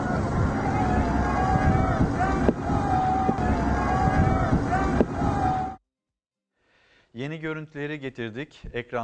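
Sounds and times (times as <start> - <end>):
boat engine roaring on the open sea: 0.0 - 5.8
faint voices: 0.0 - 5.8
speech: 7.2 - 9.0.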